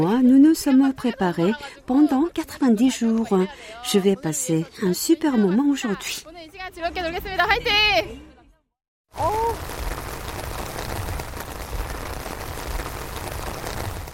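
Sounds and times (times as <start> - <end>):
speech: 0.0 - 8.3, 9.1 - 9.9
heavy pouring rain at a festival: 9.1 - 14.1.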